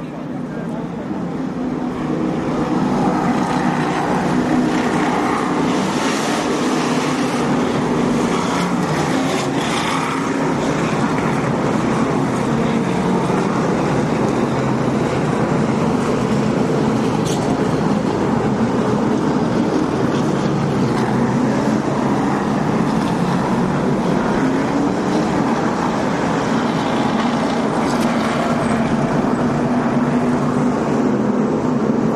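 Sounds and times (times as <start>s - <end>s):
racing truck engines roaring on a track: 0.0s - 32.1s.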